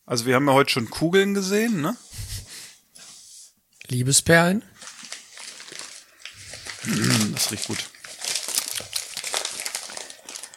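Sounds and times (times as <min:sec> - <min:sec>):
speech: 0:00.1 - 0:02.2, 0:03.9 - 0:04.8, 0:06.9 - 0:07.9
parcel packaging rustling and crinkling: 0:04.7 - 0:10.5.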